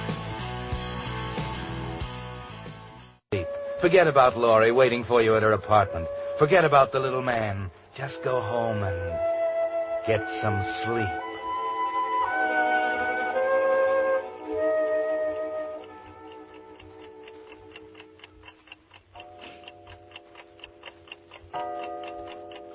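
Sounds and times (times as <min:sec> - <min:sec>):
speech: 0:03.3 - 0:09.3, 0:10.0 - 0:11.3
clock ticking: 0:03.4 - 0:09.3, 0:10.1 - 0:22.7
clock striking with resonant bell-like tones: 0:19.2 - 0:22.7.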